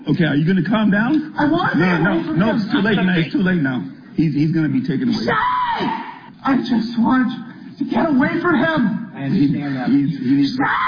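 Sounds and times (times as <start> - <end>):
speech: 0.0 - 10.8
person screaming: 5.3 - 6.3, 10.6 - 10.8.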